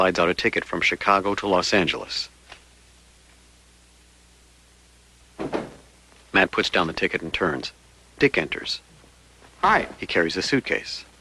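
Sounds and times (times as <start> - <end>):
speech: 0.0 - 2.4, 6.3 - 8.9, 9.6 - 11.1
door closing gently: 5.4 - 5.9.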